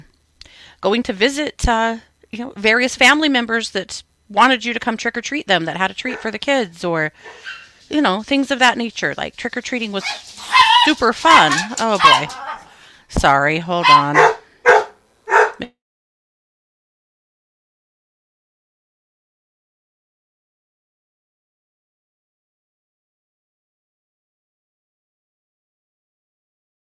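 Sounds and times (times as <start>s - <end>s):
speech: 0.7s - 12.5s, 13.1s - 14.4s
dog barking: 7.2s - 7.8s, 10.0s - 12.7s, 13.8s - 15.7s.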